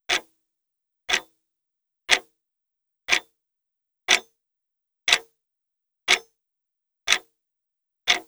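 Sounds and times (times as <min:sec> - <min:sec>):
clock: 0:03.1 - 0:03.3, 0:04.1 - 0:04.3, 0:06.1 - 0:06.3, 0:08.1 - 0:08.2.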